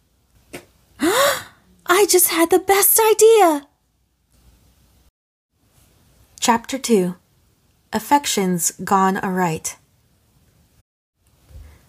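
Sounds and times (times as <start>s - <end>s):
woman gasping: 1.0s - 1.6s
speech: 2.0s - 3.7s, 6.5s - 7.2s, 7.9s - 9.8s.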